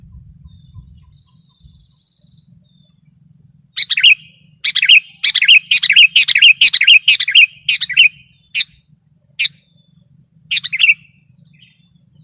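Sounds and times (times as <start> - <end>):
low rumbling: 0.0 - 1.9
faint thin high whine: 0.0 - 12.2
sooty-headed bulbul singing: 0.0 - 12.2.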